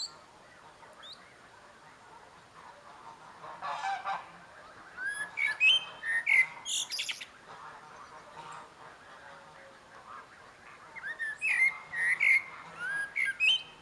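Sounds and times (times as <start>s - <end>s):
common blackbird singing, Turdus merula: 0.0s - 1.5s, 4.7s - 8.6s, 10.8s - 13.8s.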